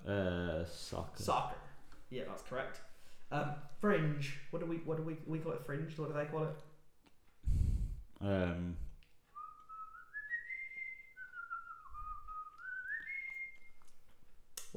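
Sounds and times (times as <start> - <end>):
speech: 0.0 - 6.7, 8.2 - 8.9
person whistling a short tune: 9.3 - 13.9.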